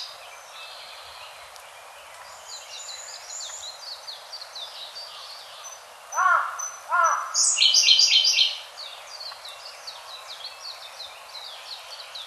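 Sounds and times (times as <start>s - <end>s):
Siberian blue robin harsh calls: 6.1s - 8.6s.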